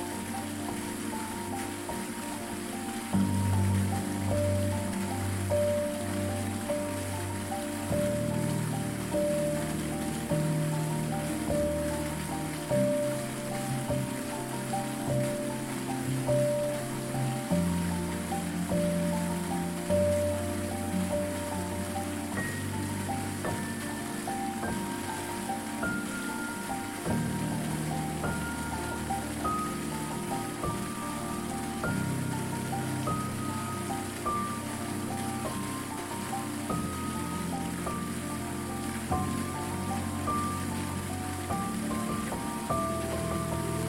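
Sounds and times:
gentle melody: 0:00.0 - 0:43.8
waterfall pouring onto rocks: 0:00.0 - 0:43.8.

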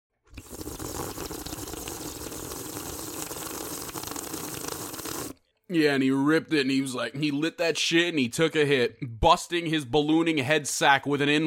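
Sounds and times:
water filling a gravity bong: 0:00.3 - 0:05.4
speech: 0:05.7 - 0:11.4.

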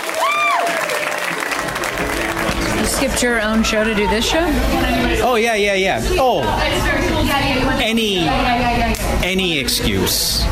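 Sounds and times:
faint cheering: 0:00.0 - 0:02.9
audience applause for a comedian: 0:00.0 - 0:04.5
speech: 0:03.0 - 0:10.5.

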